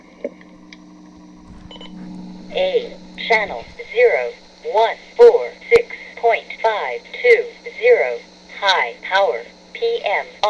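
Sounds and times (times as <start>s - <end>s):
steady low electrical hum: 0.0s - 10.4s
faint higher blips from a radio being turned on: 0.3s - 6.0s
low-tone electronic beep from a radio's on-off button: 1.4s - 4.0s
speech: 2.5s - 5.6s, 6.2s - 10.4s.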